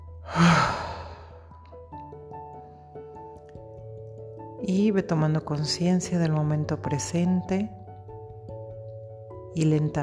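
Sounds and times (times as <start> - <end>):
deep breathy exhale in a guided breathing exercise: 0.2 - 1.4
speech: 4.6 - 7.8, 9.6 - 10.0.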